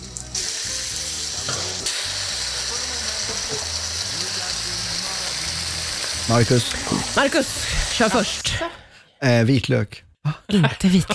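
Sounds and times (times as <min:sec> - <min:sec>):
food sizzling in a hot frying pan: 0:00.0 - 0:08.5
speech: 0:06.3 - 0:11.1
laughter: 0:10.3 - 0:11.1.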